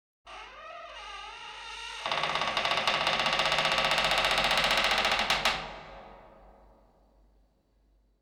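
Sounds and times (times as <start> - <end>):
door creaking: 0.3 - 5.8.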